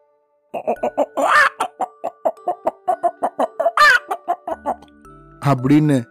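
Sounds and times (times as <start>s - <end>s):
speech: 0.5s - 1.3s, 5.5s - 6.0s
voice imitating a hen clucking and squawking: 0.6s - 4.8s.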